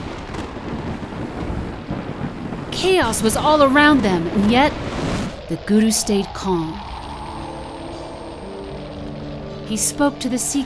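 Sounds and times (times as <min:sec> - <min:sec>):
faint hiss of rain or wind: 0:00.0 - 0:10.6
loud rolling thunder with crackling lightning: 0:00.0 - 0:10.6
speech: 0:02.8 - 0:06.8, 0:09.7 - 0:10.6.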